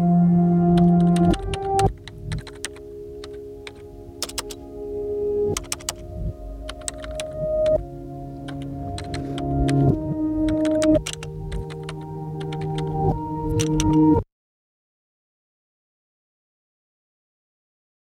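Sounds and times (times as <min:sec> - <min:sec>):
low sustained tone: 0:00.0 - 0:13.6
fingers typing on a keyboard: 0:00.7 - 0:04.6, 0:05.6 - 0:06.0, 0:06.7 - 0:07.8, 0:08.4 - 0:14.1.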